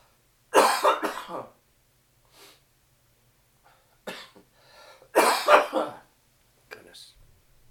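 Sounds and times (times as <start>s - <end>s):
harsh coughing fit: 0.5s - 1.6s, 4.1s - 4.4s, 5.1s - 6.1s.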